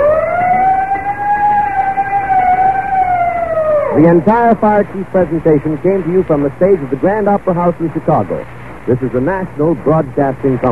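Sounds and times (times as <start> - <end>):
fire engine siren: 0.0 - 4.3
speech: 4.0 - 10.7.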